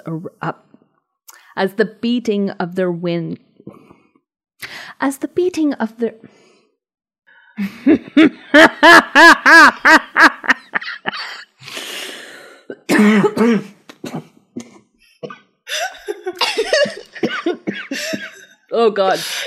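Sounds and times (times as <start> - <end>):
speech: 0.0 - 0.7, 1.6 - 3.8, 5.0 - 6.4, 7.6 - 11.3, 13.0 - 14.3, 17.4 - 19.4
laughter: 7.6 - 11.4, 15.9 - 18.4
person coughing: 12.7 - 18.5.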